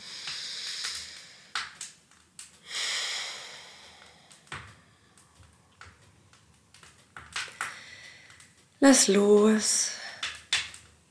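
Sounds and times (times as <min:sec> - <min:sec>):
deep breathing in and out through the nose: 0:00.0 - 0:01.5, 0:02.6 - 0:05.0
speech: 0:08.8 - 0:10.0.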